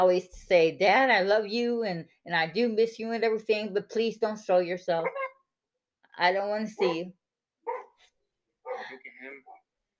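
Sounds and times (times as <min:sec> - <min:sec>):
speech: 0:00.0 - 0:05.2, 0:06.2 - 0:07.2
dog barking and yelping: 0:05.0 - 0:05.5, 0:07.6 - 0:08.9.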